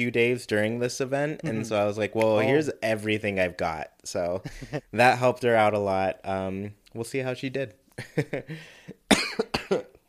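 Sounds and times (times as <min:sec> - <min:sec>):
speech: 0:00.0 - 0:08.8
person coughing: 0:09.1 - 0:10.0.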